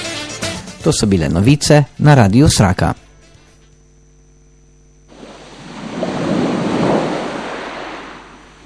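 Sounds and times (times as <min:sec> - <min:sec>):
speech: 0:00.8 - 0:03.1
single sea wave of surf rolling in and washing back out: 0:05.1 - 0:08.6
wind rushing: 0:05.1 - 0:08.6.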